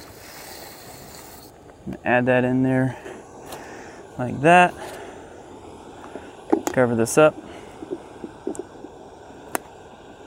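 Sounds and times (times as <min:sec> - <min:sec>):
water boiling in a pot: 0:00.0 - 0:01.7, 0:04.1 - 0:10.2
speech: 0:01.8 - 0:03.1, 0:04.2 - 0:04.8, 0:06.8 - 0:07.4.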